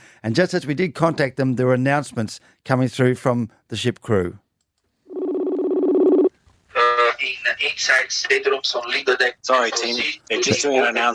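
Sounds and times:
speech: 0.2s - 4.4s, 7.2s - 11.1s
buzzy electronic internet phone call calling tone: 5.1s - 7.2s.

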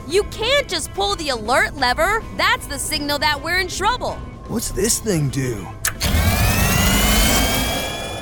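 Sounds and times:
speech: 0.1s - 5.8s
turbo booster engine revving: 5.9s - 8.2s
rising whine: 6.0s - 8.2s.

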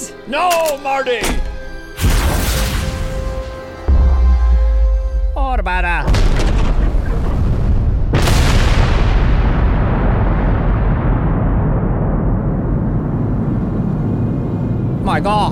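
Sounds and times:
speech: 0.0s - 1.4s, 5.5s - 6.2s, 15.1s - 15.5s
huge bomb exploding: 2.0s - 4.2s, 6.0s - 14.9s.

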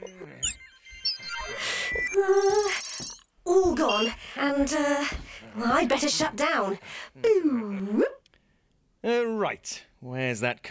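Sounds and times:
phone ringtone of bright electronic beeps and chirps: 0.0s - 4.1s
speech: 3.8s - 8.1s, 9.0s - 10.6s.

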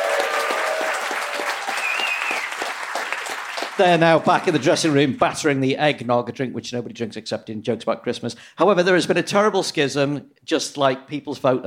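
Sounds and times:
crowd applauding: 0.0s - 5.2s
faint whistles from crowd: 1.8s - 2.6s
speech: 3.8s - 11.6s.

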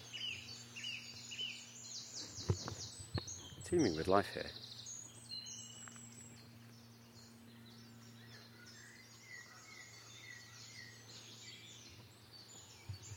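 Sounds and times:
low steady hum: 0.0s - 13.1s
song thrush singing: 0.0s - 13.1s
speech: 3.7s - 4.6s.

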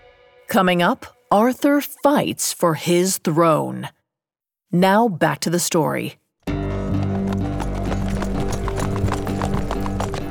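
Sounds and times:
speech: 0.5s - 4.0s, 4.7s - 6.2s
horses' hooves clip-clopping as riders travel a long road: 6.5s - 10.2s.

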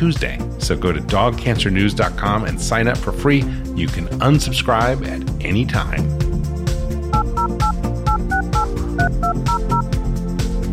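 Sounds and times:
speech: 0.0s - 6.2s
steady musical background: 0.0s - 10.7s
telephone keypad dialing tones: 7.2s - 9.8s.

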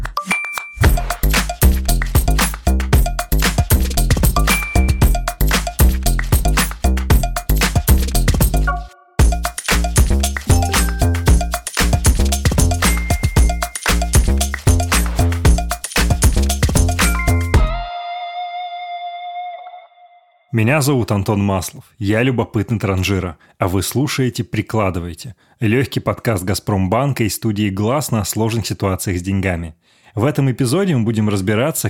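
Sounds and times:
upbeat instrumental podcast theme jingle with percussion and bell-like dings: 0.1s - 17.9s
speech: 20.6s - 31.8s.

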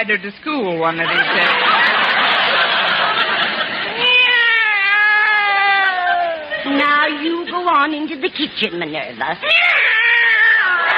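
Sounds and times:
speech: 0.0s - 1.8s, 6.6s - 9.9s
laughter: 1.0s - 4.4s, 10.7s - 10.9s
domestic cat meowing: 4.0s - 6.5s, 9.4s - 10.9s.

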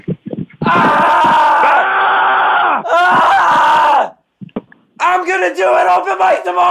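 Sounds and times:
two people screaming together to seal a promise: 0.6s - 4.2s
speech: 0.7s - 1.0s, 5.4s - 6.7s.

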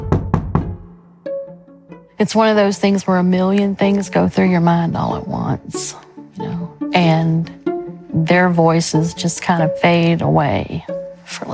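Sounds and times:
heavy knocks pounding on a door: 0.0s - 0.8s
speech: 2.2s - 7.6s, 8.2s - 11.5s.

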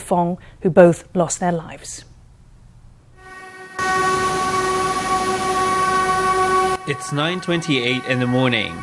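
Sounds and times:
speech: 0.1s - 2.1s, 6.9s - 8.8s
express train horn blast in Taiwan: 3.2s - 8.8s.

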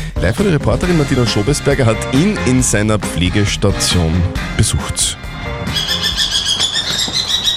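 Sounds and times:
speech: 0.2s - 6.3s
Eurasian eagle-owl giving a harsh high-pitched screeching call: 5.6s - 7.5s.

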